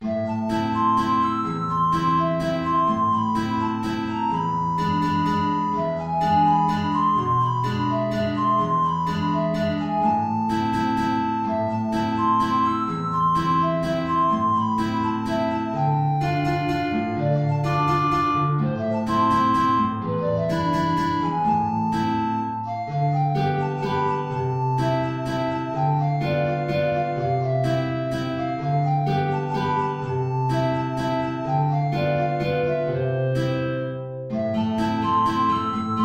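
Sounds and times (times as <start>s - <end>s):
alto flute: 0.0s - 36.0s
guitar: 0.0s - 36.0s.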